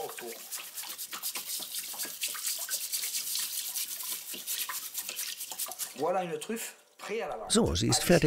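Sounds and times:
brush scrubbing soil off a truffle under running water in Blaye: 0.0s - 6.2s
running water: 0.0s - 8.2s
speech: 6.0s - 8.2s.

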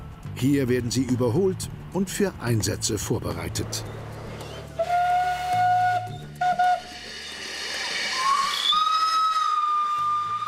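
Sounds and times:
speech: 0.4s - 4.0s
working farm steam locomotive whistle: 4.8s - 10.4s
hissing steam: 6.6s - 10.2s.

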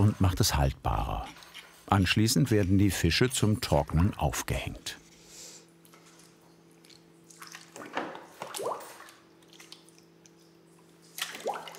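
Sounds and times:
steady low hum: 0.0s - 11.2s
speech: 0.1s - 5.0s
salt-brined dried fish squelching as pushed onto a smoking rod: 6.2s - 11.7s.

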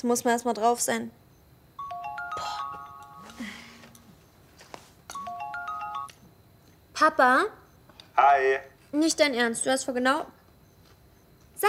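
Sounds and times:
speech: 0.0s - 1.2s, 7.0s - 7.6s, 8.2s - 10.4s
mobile phone melodic electronic ringtone for an incoming call: 1.8s - 4.3s, 5.1s - 6.2s.

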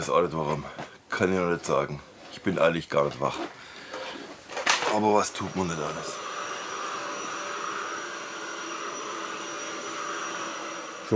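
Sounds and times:
speech: 0.0s - 3.6s, 4.9s - 6.2s
vacuum cleaner running: 4.8s - 11.1s.

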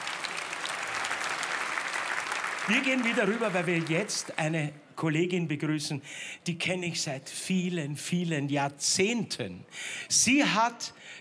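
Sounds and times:
audience applause for a band after a Viennese song: 0.0s - 4.4s
speech: 2.7s - 11.1s.

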